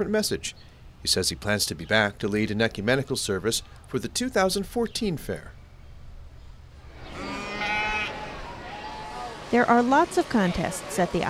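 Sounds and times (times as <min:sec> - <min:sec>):
speech: 0:00.0 - 0:05.6, 0:09.5 - 0:11.2
sheep and lambs bleating in a sheep barn arena at the Iowa State Fair: 0:07.1 - 0:08.3.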